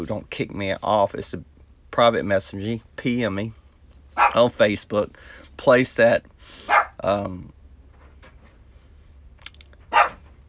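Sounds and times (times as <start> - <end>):
speech: 0.0 - 3.6, 4.3 - 7.6
dog barking: 4.2 - 4.4, 6.6 - 7.0, 9.9 - 10.2.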